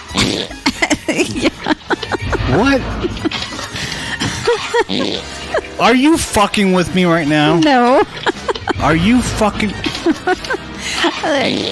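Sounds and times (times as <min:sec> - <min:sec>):
gorilla sputtering fart: 0:00.0 - 0:05.8, 0:09.7 - 0:11.6
speech: 0:00.4 - 0:03.4, 0:04.5 - 0:11.6
laughter: 0:00.6 - 0:06.9, 0:07.5 - 0:11.4.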